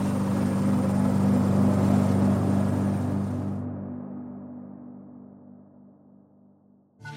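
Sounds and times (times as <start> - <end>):
helicopter flying: 0.0 - 4.8.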